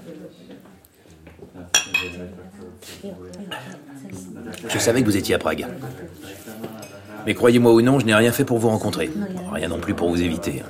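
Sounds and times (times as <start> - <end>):
people talking quietly: 0.0 - 10.6
glasses clinking together in a toast: 1.7 - 2.2
speech: 2.2 - 6.6, 7.2 - 10.6.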